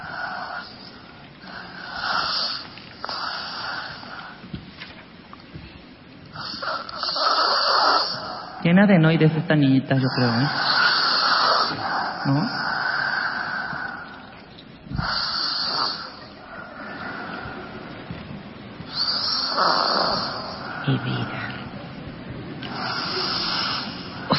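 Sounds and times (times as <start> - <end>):
young girl snoring in her sleep: 1.4 - 4.3, 6.4 - 8.6, 10.1 - 14.0, 15.0 - 17.3, 18.9 - 21.2, 22.6 - 24.3
speech: 8.6 - 10.8, 12.2 - 12.6, 20.9 - 21.4.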